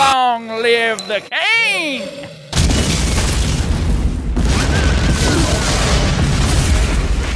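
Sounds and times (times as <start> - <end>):
speech: 0.6 - 2.4
grenade explosion: 2.5 - 7.3.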